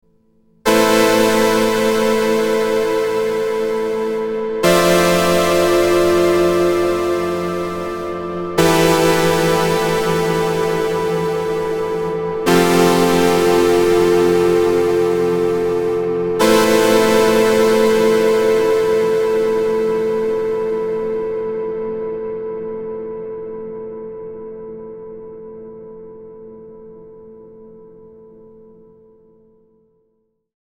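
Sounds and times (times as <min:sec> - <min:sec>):
Juno 60 synthesizer chords: 0:00.7 - 0:21.7.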